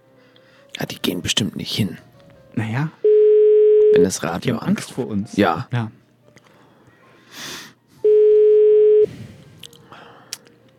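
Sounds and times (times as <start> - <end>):
speech: 0.8 - 3.0, 3.9 - 6.0
telephone ringing tone of an unanswered call: 3.0 - 4.0, 8.0 - 9.1.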